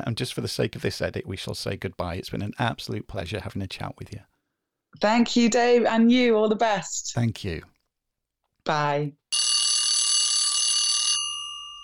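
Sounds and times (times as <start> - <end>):
speech: 0.0 - 4.3, 5.0 - 7.7, 8.6 - 9.4
loud alarm bell ringing with a harsh metallic clatter: 9.3 - 11.8.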